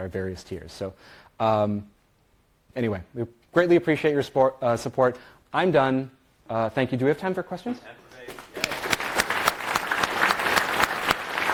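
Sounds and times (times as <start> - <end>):
speech: 0.0 - 2.0, 2.8 - 8.4
sharp hand claps: 8.3 - 11.5
soft scattered applause: 8.4 - 11.5.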